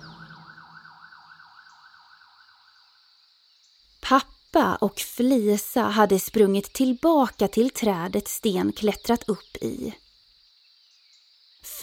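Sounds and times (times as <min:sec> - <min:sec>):
fire truck siren wailing in a rise-and-fall yelp: 0:00.0 - 0:02.5
speech: 0:04.1 - 0:10.0.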